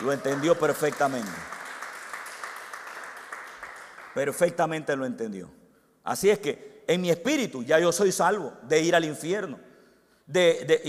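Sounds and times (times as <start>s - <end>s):
speech: 0.0s - 1.6s, 4.2s - 9.7s, 10.3s - 10.8s
audience applause: 0.0s - 4.2s.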